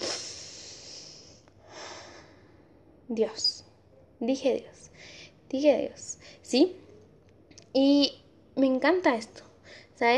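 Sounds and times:
slow deliberate breath in and out: 0.0 - 2.9, 4.9 - 5.4
speech: 3.1 - 6.8, 7.7 - 10.1.

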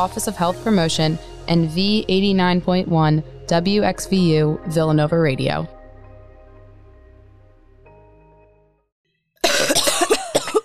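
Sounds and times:
speech: 0.0 - 5.8
low steady musical tones: 0.0 - 8.8
heavy hacking cough: 9.4 - 10.6.

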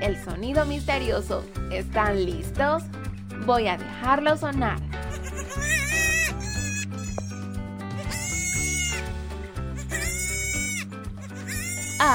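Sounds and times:
speech: 0.0 - 4.9
goat bleating: 5.1 - 9.1, 9.7 - 12.1.

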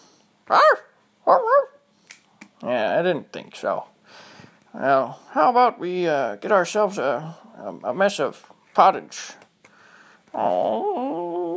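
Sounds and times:
speech: 0.5 - 1.5, 2.6 - 9.4, 10.3 - 11.1
dog barking with yowling wavering pitch: 0.5 - 1.8.

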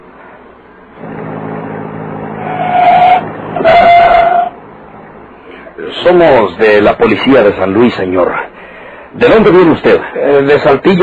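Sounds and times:
private car humming as it draws near on the highway: 1.0 - 5.6
car brakes squealing as it slows and stops on the highway: 2.3 - 4.6
speech: 6.1 - 8.5, 9.1 - 11.0.

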